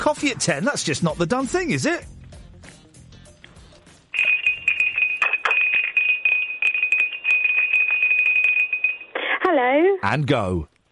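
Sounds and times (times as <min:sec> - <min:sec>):
speech: 0:00.0 - 0:02.2, 0:10.1 - 0:10.7
bell ringing: 0:04.1 - 0:09.2.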